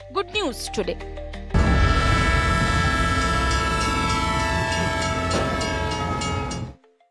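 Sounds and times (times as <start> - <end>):
speech: 0.1 - 1.2
loud rumbling rail noise: 1.6 - 6.8
train horn blaring in a long steady tone: 1.6 - 6.8.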